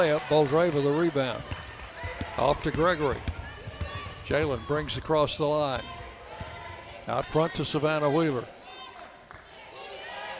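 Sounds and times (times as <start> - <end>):
speech: 0.0 - 1.6, 2.4 - 3.3, 4.3 - 6.0, 7.1 - 8.6
crowd noise at a women's college basketball game: 0.0 - 10.3
basketball thumping on the court as a player dribbles: 1.3 - 5.1, 5.8 - 6.8.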